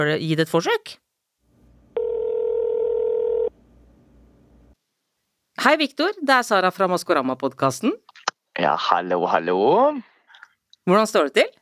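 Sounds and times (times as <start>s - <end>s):
speech: 0.0s - 1.0s, 5.6s - 10.1s, 10.9s - 11.6s
faint hum: 0.0s - 11.6s
steady electronic telephone tone: 2.0s - 3.5s.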